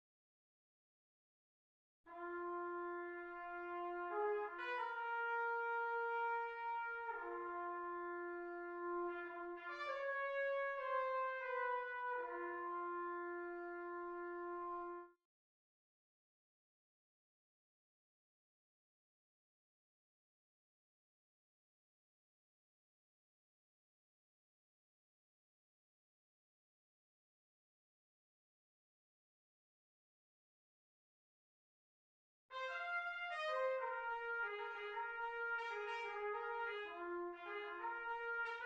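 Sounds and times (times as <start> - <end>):
trumpet in Bb: 2.1 - 15.2, 32.5 - 38.6.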